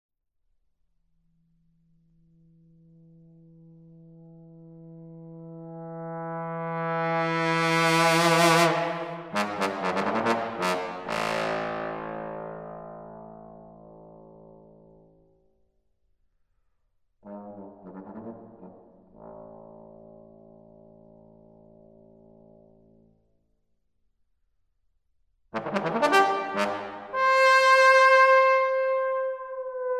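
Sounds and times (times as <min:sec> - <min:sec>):
trombone solo improvisation: 0:04.8 - 0:14.4, 0:17.2 - 0:20.7, 0:25.6 - 0:29.9.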